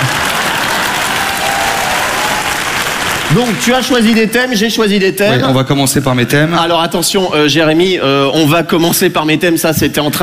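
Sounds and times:
audience applauding with a dense wash of clapping hands: 0:00.0 - 0:04.6
speech: 0:03.3 - 0:10.2.

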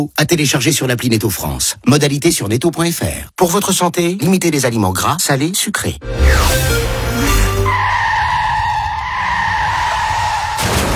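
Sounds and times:
speech: 0:00.0 - 0:07.4
car tires screeching as a car skids: 0:06.2 - 0:10.9.

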